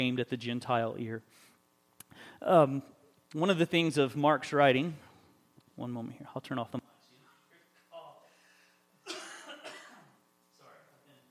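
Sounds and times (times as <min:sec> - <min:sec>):
speech: 0:00.0 - 0:01.5, 0:02.1 - 0:05.1, 0:05.8 - 0:06.9
person coughing in harsh raspy bursts: 0:09.0 - 0:10.2.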